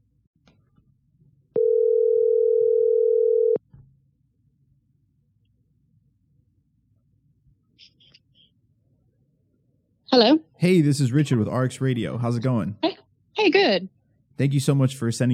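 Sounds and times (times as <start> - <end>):
telephone ringing tone: 1.6 - 3.6
speech: 10.2 - 15.3.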